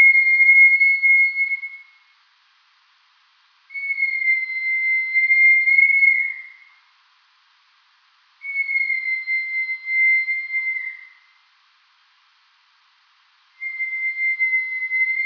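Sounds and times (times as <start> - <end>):
rat whistled calls: 0.0 - 2.1, 3.7 - 6.8, 8.4 - 11.4, 13.6 - 15.2.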